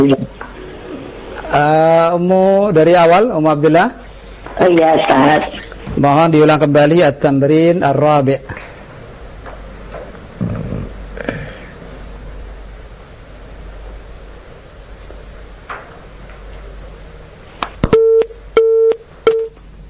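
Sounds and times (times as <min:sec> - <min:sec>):
speech: 0:00.0 - 0:00.4, 0:01.5 - 0:04.0, 0:04.6 - 0:08.6
telephone busy tone after a cut-off call: 0:17.9 - 0:19.6.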